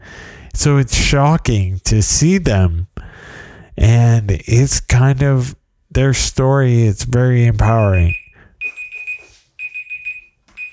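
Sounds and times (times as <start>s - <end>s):
speech: 0.6s - 3.0s, 3.8s - 8.2s
timer alarm beeping with shrill electronic tone: 7.8s - 10.7s.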